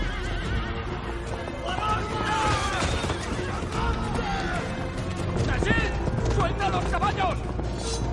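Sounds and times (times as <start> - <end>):
galloping hooves of mounted riders riding away: 0.0 - 8.1
horses whinnying: 1.7 - 4.8.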